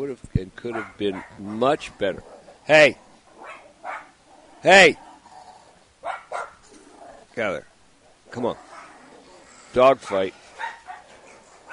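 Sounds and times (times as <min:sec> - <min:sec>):
speech: 0:00.0 - 0:03.0, 0:04.6 - 0:05.0, 0:07.4 - 0:07.7, 0:08.3 - 0:08.7, 0:09.8 - 0:10.4
dogs barking: 0:00.6 - 0:02.7, 0:03.3 - 0:04.2, 0:06.0 - 0:07.1, 0:08.2 - 0:11.7
dogs yipping: 0:00.7 - 0:01.8, 0:03.4 - 0:04.2, 0:06.0 - 0:07.0, 0:08.6 - 0:11.7
dogs fighting and scuffling: 0:00.7 - 0:07.3, 0:08.0 - 0:11.7.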